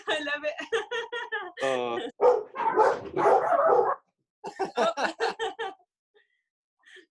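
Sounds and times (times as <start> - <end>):
laughter: 0.0 - 2.2, 4.5 - 5.8
speech: 0.1 - 1.0
dogs barking: 2.1 - 4.1.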